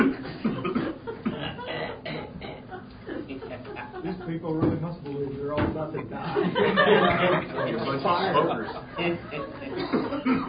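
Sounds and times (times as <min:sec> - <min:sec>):
laughter: 0:00.0 - 0:02.1, 0:02.7 - 0:04.6, 0:06.0 - 0:10.4
several people coughing: 0:00.0 - 0:03.4, 0:08.9 - 0:10.4
speech: 0:04.0 - 0:10.4.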